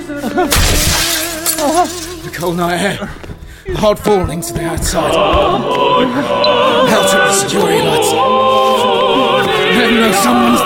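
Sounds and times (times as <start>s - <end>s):
speech: 0.2s - 0.9s, 1.8s - 10.6s
glass panel of a sliding double door in an aluminium frame smashing: 0.5s - 3.0s.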